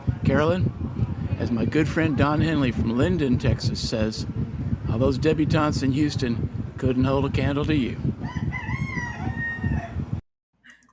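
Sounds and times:
speech: 0.3 - 8.4
rooster crowing: 8.2 - 10.1.

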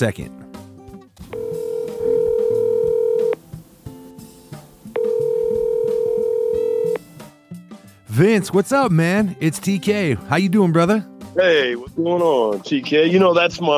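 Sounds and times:
speech: 0.0 - 0.4, 8.2 - 13.7
telephone ringing tones of a phone call: 1.3 - 3.4, 5.0 - 7.0.

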